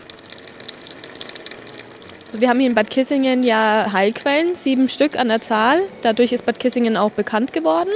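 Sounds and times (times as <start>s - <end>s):
healing spring water gushing from a tap: 0.0s - 4.7s
speech: 2.3s - 7.9s.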